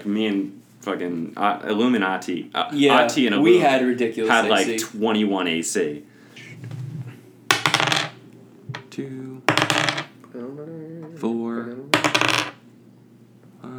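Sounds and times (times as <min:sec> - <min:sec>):
speech: 0:00.0 - 0:06.8, 0:09.0 - 0:11.9
faint hum: 0:00.0 - 0:13.7
handful of dice clattering on a hard tabletop: 0:07.5 - 0:08.2, 0:09.5 - 0:10.1, 0:12.0 - 0:12.6.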